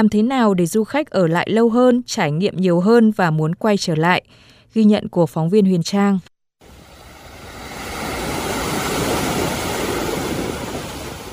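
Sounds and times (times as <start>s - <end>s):
speech: 0.0s - 6.3s
sea wave washing up a beach: 6.6s - 11.3s.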